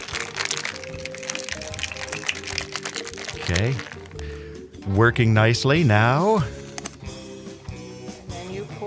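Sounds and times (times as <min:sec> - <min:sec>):
ice rattling in a metal cocktail shaker with lemon juice and sugar: 0:00.0 - 0:04.2
speech: 0:03.5 - 0:04.0, 0:04.8 - 0:06.6.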